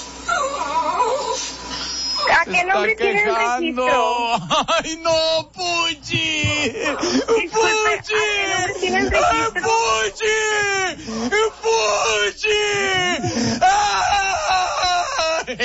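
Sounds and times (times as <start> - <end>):
dog whimpering and whining: 0.3 - 2.4
speech: 2.4 - 14.6
laughter: 3.0 - 15.6
voices: 6.0 - 13.7.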